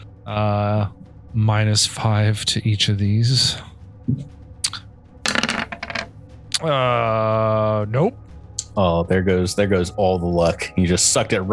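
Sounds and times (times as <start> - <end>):
speech: 0.3 - 4.3, 6.6 - 8.2, 8.8 - 11.5
dice rolling on a hard tabletop: 5.3 - 6.1.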